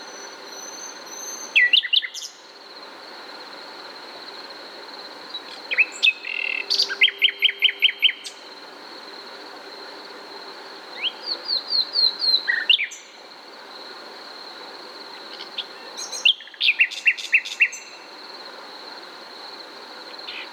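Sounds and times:
common nightingale Luscinia megarhynchos song: 0.0 - 2.6, 5.1 - 8.6, 10.9 - 13.3, 15.1 - 18.2, 20.0 - 20.5.

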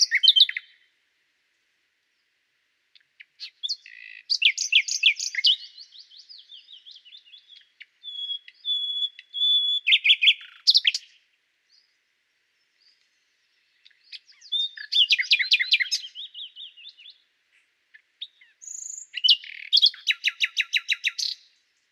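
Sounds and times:
common nightingale Luscinia megarhynchos singing: 0.0 - 1.0, 2.0 - 21.9.

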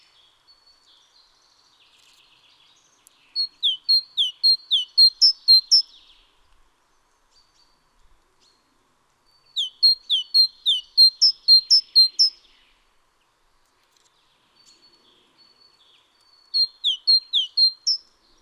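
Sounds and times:
Great tit song, Parus major: 3.1 - 6.0, 9.3 - 12.4, 15.5 - 18.1.

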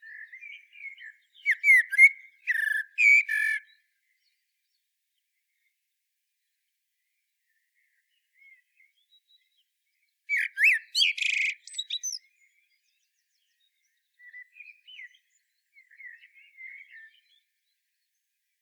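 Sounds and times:
common blackbird Turdus merula song: 0.0 - 18.5.

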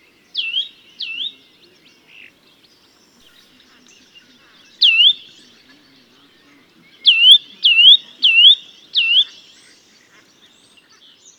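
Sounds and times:
Eurasian nuthatch Sitta europaea calling: 0.3 - 1.4, 3.7 - 5.7, 7.0 - 9.7.

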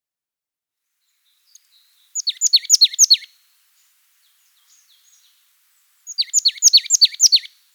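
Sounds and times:
marsh tit Parus palustris calling in thin high down-slurred notes: 1.5 - 3.3, 4.2 - 7.7.

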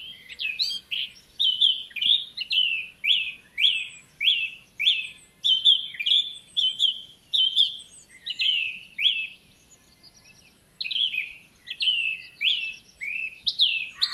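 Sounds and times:
Eurasian blackcap song, Sylvia atricapilla: 0.0 - 14.1.

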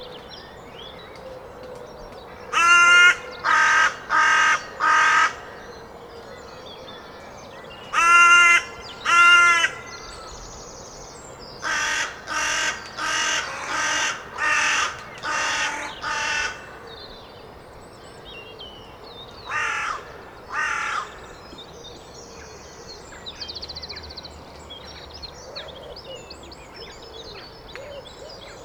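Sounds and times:
carrion crow cawing: 2.5 - 5.7, 8.0 - 10.0, 11.6 - 16.8, 19.5 - 21.2.

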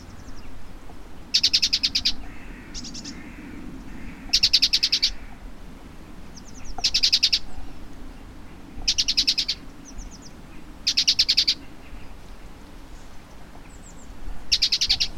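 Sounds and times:
Great tit chattering call: 1.3 - 5.3, 6.3 - 7.6, 8.8 - 12.2, 13.9 - 15.1.

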